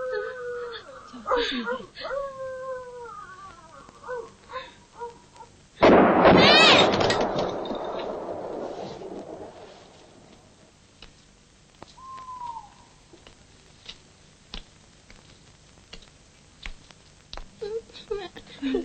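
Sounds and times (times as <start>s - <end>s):
speech: 1.3s - 2.3s
loud explosive blast with crackling rumbling noise: 5.8s - 10.5s.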